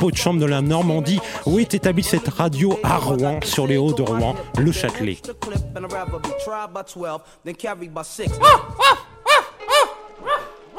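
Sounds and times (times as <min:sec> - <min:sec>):
speech: 0:00.0 - 0:09.0
small black-and-white dog barking: 0:08.4 - 0:10.7.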